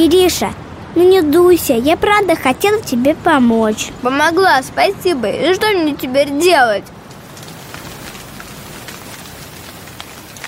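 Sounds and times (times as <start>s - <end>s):
speech: 0.0s - 7.0s
heavy rain falling: 7.0s - 10.4s.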